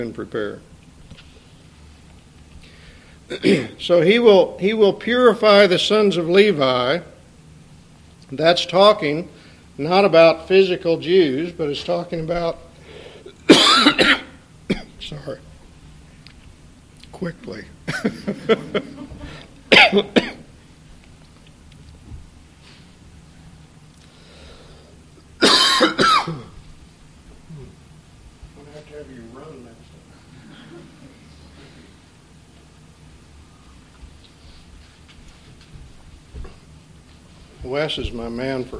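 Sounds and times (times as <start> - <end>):
speech: 0.0 - 0.7, 3.3 - 7.1, 8.3 - 12.6, 13.5 - 14.3, 15.0 - 15.5, 17.2 - 19.1, 19.7 - 20.2, 37.7 - 38.7
person coughing: 3.3 - 3.8, 13.3 - 15.0, 19.2 - 20.5, 25.4 - 26.6
laughter: 17.9 - 19.5.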